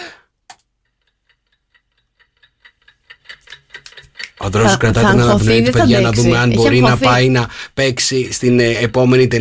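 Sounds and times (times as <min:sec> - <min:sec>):
stopwatch timer ticking: 0:00.4 - 0:07.5
speech: 0:04.5 - 0:09.4.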